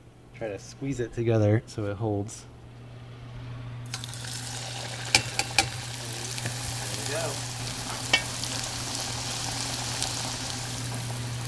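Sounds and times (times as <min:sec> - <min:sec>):
speech: 0:00.4 - 0:02.6
falafel balls sizzling in a pot of hot oil: 0:03.8 - 0:11.4.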